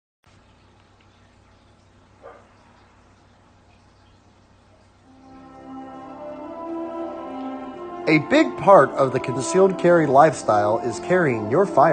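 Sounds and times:
dog barking: 2.2 - 2.6
speech: 8.1 - 11.9.

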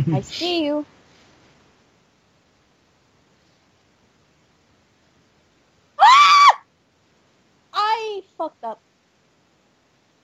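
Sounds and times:
speech: 0.0 - 1.0, 8.4 - 8.9
high-pitched scream: 6.0 - 6.7.

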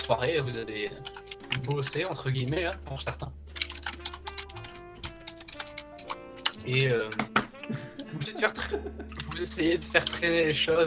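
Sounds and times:
speech: 0.1 - 3.4, 6.6 - 10.8
fast heavy typing on a computer keyboard: 3.5 - 6.6
laughter: 7.6 - 9.5.

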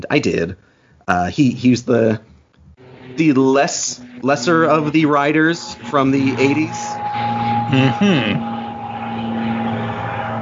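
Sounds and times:
speech: 0.0 - 2.3, 3.2 - 8.5
airplane engine droning overhead: 2.8 - 10.4.

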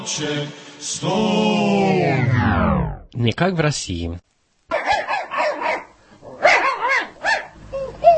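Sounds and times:
speech: 0.1 - 4.3
dog barking in loud bursts: 4.7 - 7.6
dog giving a high thin whimper: 7.7 - 8.1.

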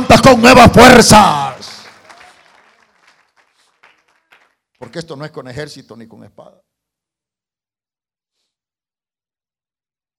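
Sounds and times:
crowd applauding: 0.0 - 5.1
speech: 0.1 - 1.5, 4.9 - 6.7.

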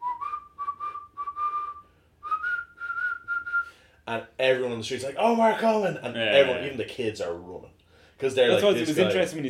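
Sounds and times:
man whistling a simple tune: 0.0 - 3.8
speech: 4.1 - 9.4.

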